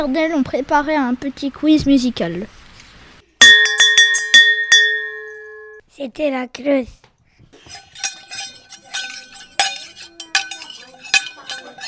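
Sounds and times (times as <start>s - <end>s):
speech: 0.0s - 2.6s, 6.0s - 7.0s
spoon clinking in a saucepan: 3.4s - 5.8s, 7.6s - 11.8s.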